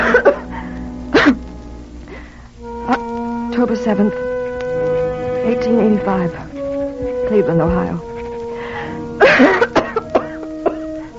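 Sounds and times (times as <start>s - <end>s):
steady sustained musical tone: 0.0s - 11.1s
speech: 3.6s - 4.3s, 5.4s - 6.5s, 7.3s - 8.1s, 9.4s - 9.6s
person sick with consumption coughing: 9.2s - 10.8s.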